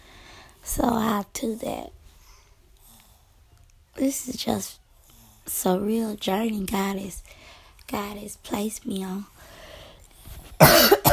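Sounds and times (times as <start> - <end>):
speech: 0.8 - 2.0, 4.0 - 4.8, 5.5 - 9.3, 10.6 - 11.0
loud cough: 10.6 - 11.1.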